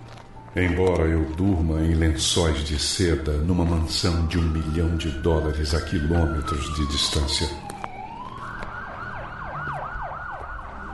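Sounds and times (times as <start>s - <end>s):
speech: 0.5s - 7.7s
police siren yelping: 3.8s - 10.9s.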